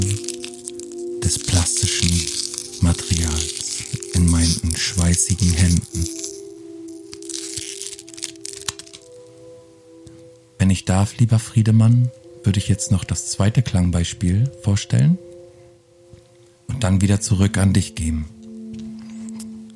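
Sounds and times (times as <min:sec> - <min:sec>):
packaging crushed in the hands crinkling: 0:00.0 - 0:09.3
speech: 0:01.3 - 0:03.6, 0:04.2 - 0:06.2, 0:10.9 - 0:15.3, 0:16.8 - 0:18.4.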